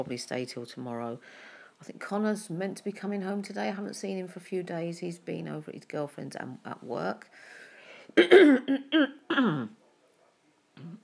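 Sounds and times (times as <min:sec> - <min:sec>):
speech: 0:00.0 - 0:07.6, 0:08.2 - 0:09.8, 0:10.8 - 0:11.0
person clearing throat: 0:08.2 - 0:09.7, 0:10.8 - 0:11.0.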